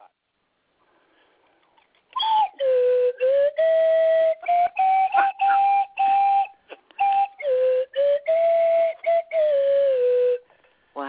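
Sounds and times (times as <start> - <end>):
slide whistle playing a bluesy tune: 2.2 - 10.6.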